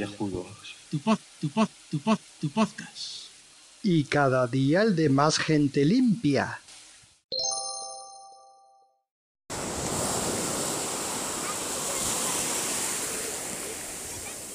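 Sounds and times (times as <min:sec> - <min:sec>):
speech: 0:00.0 - 0:03.2, 0:03.8 - 0:06.6
bright chime: 0:07.4 - 0:08.9
ocean waves breaking on a beach: 0:09.5 - 0:14.5.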